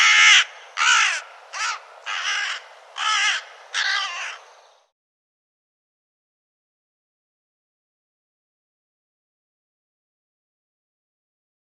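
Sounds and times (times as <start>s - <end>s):
bird giving harsh hoarse rasping caws: 0.0s - 4.9s.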